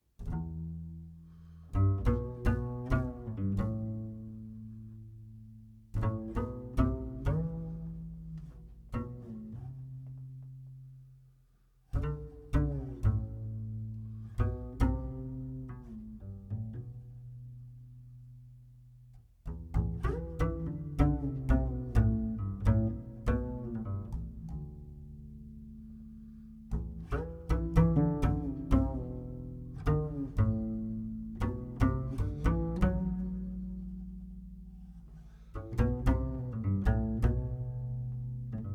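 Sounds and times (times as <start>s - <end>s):
bass transition in a jazz quartet: 0.0s - 38.7s.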